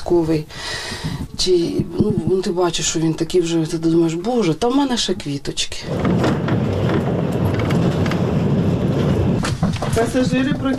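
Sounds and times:
speech: 0.1s - 6.6s, 10.0s - 10.7s
passenger train rumbling and rattling at station platform in Kramatorsk: 5.9s - 10.7s.

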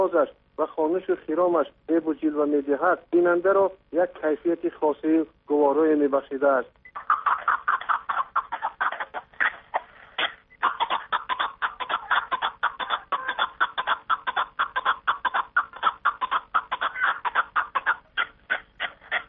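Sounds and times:
speech: 0.0s - 7.2s
chukar partridge calling with harsh clucking chuk notes: 6.9s - 19.2s.

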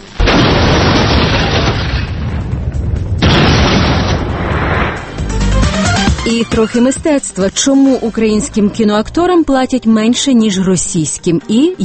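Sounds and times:
deep roaring nuclear test explosion: 0.2s - 5.3s
speech: 6.3s - 11.8s.

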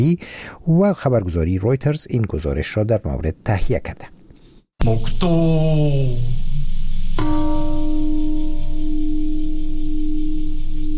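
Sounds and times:
speech: 0.0s - 4.1s, 4.8s - 6.5s
faint noise: 0.0s - 9.8s
Peace Bell in Hiroshima ringing at an atomic bombing memorial: 7.2s - 10.9s.

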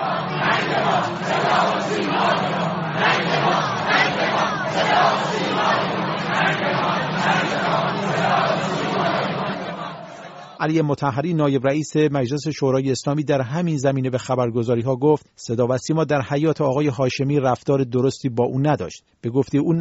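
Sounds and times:
crowd chanting harsh slogans along a funeral procession route: 0.0s - 10.6s
speech: 10.6s - 19.8s.

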